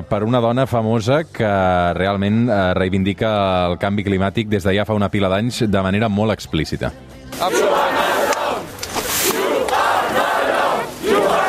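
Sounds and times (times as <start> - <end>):
speech: 0.0 - 7.8
protest crowd chanting at a demonstration against a coal mine in Germany: 7.3 - 11.4
people shouting during police eviction of protesters: 7.4 - 11.4.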